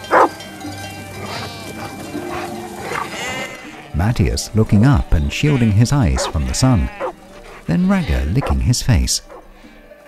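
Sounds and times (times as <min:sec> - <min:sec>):
flock of sheep bleating outdoors: 0:00.0 - 0:00.4, 0:01.1 - 0:09.8
female sheepdog barking: 0:00.1 - 0:00.3, 0:02.3 - 0:03.1, 0:06.1 - 0:07.7, 0:08.3 - 0:08.6, 0:09.2 - 0:09.7
speech: 0:04.0 - 0:07.0, 0:07.7 - 0:09.4.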